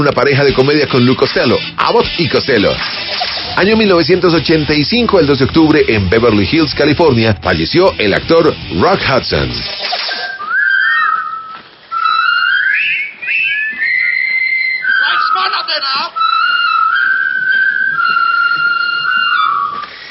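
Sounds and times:
speech: 0.0s - 10.0s
whistled march melody from a war film: 10.0s - 20.0s.

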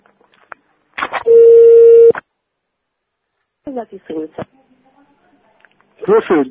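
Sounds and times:
steady low electronic telephone call tone beep: 1.2s - 2.2s.

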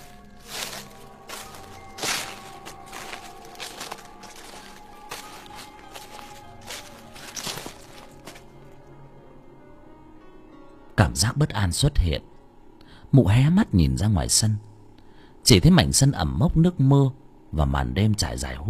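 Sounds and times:
footsteps crossing a damp rain-soaked yard at night toward a house: 0.0s - 8.9s
speech: 11.0s - 12.3s, 13.1s - 14.7s, 15.5s - 18.6s.

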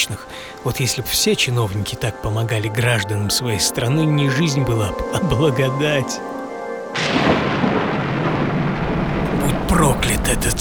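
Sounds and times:
speech: 0.0s - 6.4s, 9.8s - 10.5s
thunderstorm at the onset of a hurricane at sea: 7.0s - 10.5s.

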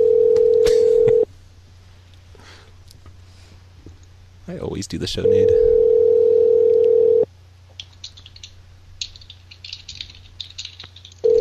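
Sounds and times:
ringback tone of a phone ringing on the line: 0.0s - 1.3s, 5.2s - 7.3s
speech: 4.5s - 5.8s
faint clicking and rattling on a phone line: 7.6s - 11.3s.

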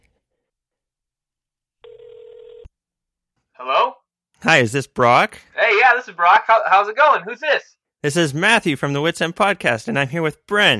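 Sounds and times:
telephone ringback tone as a phone call is dialed: 1.8s - 2.6s
speech: 3.6s - 10.7s.

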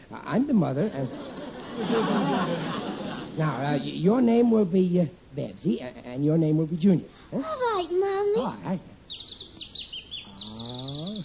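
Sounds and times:
speech: 0.1s - 9.4s
laughter: 0.8s - 4.1s
male songbird singing: 9.1s - 11.2s.

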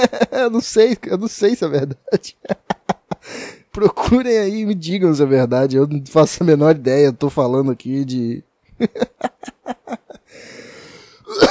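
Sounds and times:
speech: 0.0s - 10.6s
raspy, breathy wheezing: 3.2s - 3.7s, 10.2s - 11.4s
laughter: 8.8s - 10.2s
person coughing: 11.3s - 11.4s.

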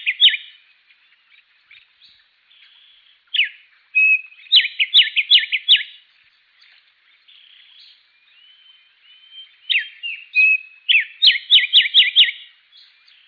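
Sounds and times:
bird song: 0.0s - 13.2s.

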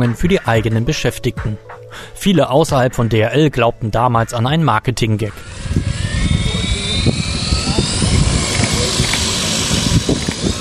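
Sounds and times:
speech: 0.0s - 6.0s, 7.0s - 7.4s
yellow parcel delivery drone rotors buzzing while taking off: 5.1s - 10.6s.

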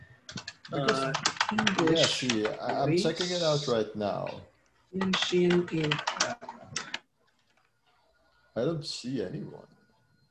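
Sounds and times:
typing on a computer keyboard: 0.3s - 2.8s, 5.0s - 7.5s
speech: 0.7s - 6.4s, 8.6s - 9.8s.

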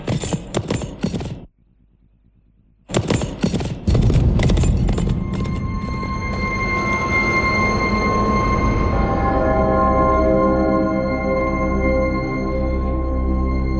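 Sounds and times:
horse hooves clip-clopping as it returns: 0.0s - 1.4s, 2.9s - 7.7s
steady sound: 0.0s - 13.7s.

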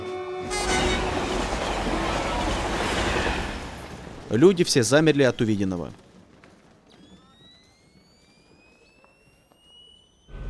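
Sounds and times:
train horn near a station: 0.0s - 2.1s
train speeding past near a station: 0.0s - 5.0s
speech: 4.3s - 6.0s.

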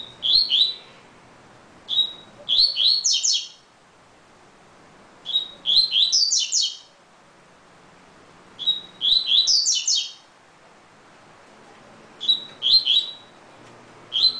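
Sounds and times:
double-collared seedeater song of high whistled and slurred notes: 0.0s - 0.8s, 1.9s - 3.6s, 5.2s - 6.9s, 8.6s - 10.2s, 12.2s - 13.4s, 14.1s - 14.3s.

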